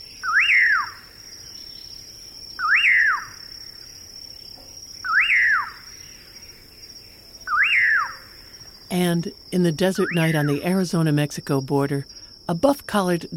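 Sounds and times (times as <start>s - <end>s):
Common Pauraque calling from thorn scrub along the Rio Grande in Texas: 0.2s - 1.0s, 2.6s - 3.4s, 5.0s - 5.9s, 7.5s - 8.3s
speech: 8.9s - 13.3s.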